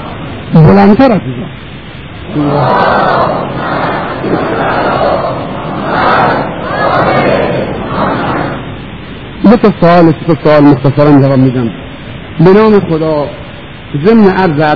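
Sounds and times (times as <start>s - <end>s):
speech: 0.8s - 1.6s, 2.3s - 3.5s, 9.5s - 11.8s, 12.4s - 14.7s
audience chanting salawat blessing in unison: 2.3s - 8.6s.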